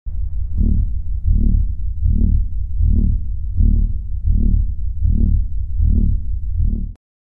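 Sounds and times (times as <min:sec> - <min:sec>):
heavy synth: 0:00.6 - 0:07.0.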